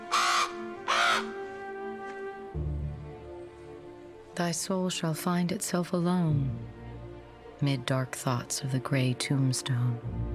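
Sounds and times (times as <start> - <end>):
raven cawing: 0.0 - 1.4
speech: 4.4 - 6.8, 7.6 - 10.3.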